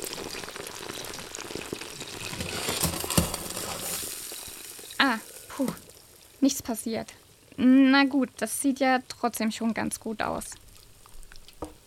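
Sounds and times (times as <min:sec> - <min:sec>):
liquid hissing as it spills over: 0:00.0 - 0:06.4
pot boiling over on the stove: 0:00.0 - 0:11.8
speech: 0:05.0 - 0:05.8, 0:06.4 - 0:10.6.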